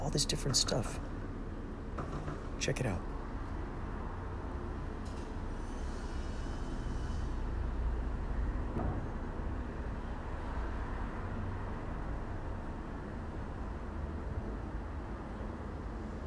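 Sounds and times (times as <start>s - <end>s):
cars passing: 0.0s - 16.2s
dense rumble of city traffic: 0.0s - 16.2s
speech: 0.1s - 1.1s, 2.6s - 3.1s
clanks and hisses of construction work: 5.0s - 9.2s.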